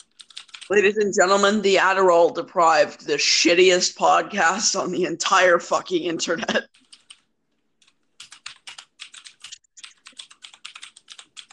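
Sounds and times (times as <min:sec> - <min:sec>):
computer keyboard typing: 0:00.0 - 0:00.8, 0:06.7 - 0:11.5
speech: 0:00.7 - 0:06.7.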